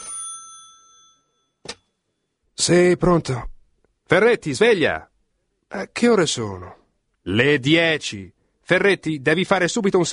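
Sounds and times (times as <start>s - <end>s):
old-style telephone bell ringing in a hotel room: 0.0s - 1.6s
speech: 2.6s - 3.5s, 4.1s - 5.1s, 5.7s - 10.1s.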